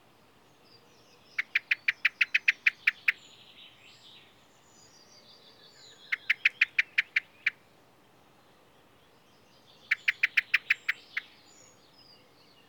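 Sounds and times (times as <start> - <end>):
faint bird chatter: 0.7 - 7.6, 8.4 - 12.6
common blackbird Turdus merula rattling call: 1.4 - 3.2, 6.1 - 7.6, 9.9 - 11.3.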